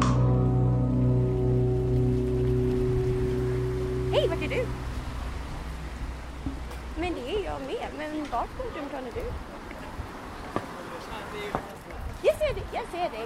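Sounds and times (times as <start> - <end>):
low humming drone: 0.1 - 7.1
rain falling in a city square: 0.9 - 13.2
people talking over the downpour: 4.1 - 4.7, 7.0 - 9.4, 10.7 - 13.2.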